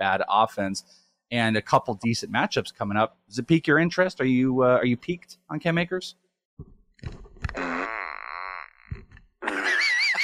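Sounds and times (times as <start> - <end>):
speech: 0.0 - 7.6
cartoonish rainbow fart emoji sound effect: 7.4 - 10.2.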